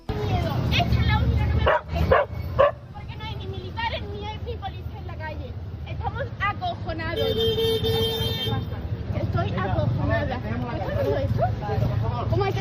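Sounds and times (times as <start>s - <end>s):
street noise: 0.0s - 12.5s
dog barking: 1.6s - 2.8s.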